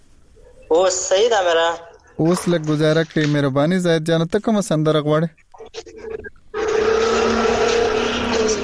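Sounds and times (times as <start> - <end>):
speech: 0.7 - 6.0
motorcycle engine heard over a phone call: 6.6 - 8.6.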